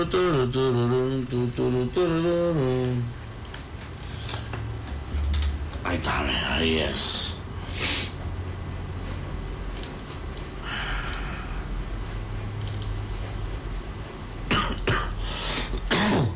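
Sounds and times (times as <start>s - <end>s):
speech: 0.0s - 3.2s, 5.9s - 7.2s
steady low hum: 0.0s - 15.1s
faint clicking: 2.6s - 4.7s, 11.0s - 11.3s
harsh barking cough: 14.5s - 15.2s, 15.8s - 16.3s
throaty throat clearing: 14.5s - 15.2s, 15.8s - 16.3s.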